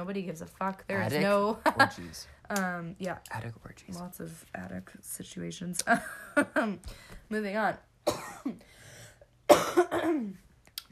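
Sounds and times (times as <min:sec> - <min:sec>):
speech: 0:00.0 - 0:08.8, 0:09.5 - 0:10.4
person coughing harshly with a raspy throaty tail: 0:08.1 - 0:08.6, 0:09.5 - 0:10.4.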